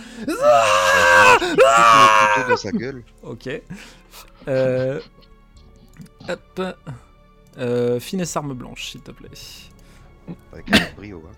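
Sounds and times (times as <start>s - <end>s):
speech: 0.2s - 0.8s, 1.4s - 5.2s, 6.0s - 9.7s, 10.3s - 11.3s
voice imitating a wounded man screaming in pain: 0.2s - 2.6s
laughter: 3.7s - 6.7s.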